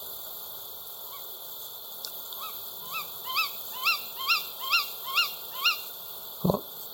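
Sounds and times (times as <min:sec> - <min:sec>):
tawny owl calling: 0:02.4 - 0:05.9.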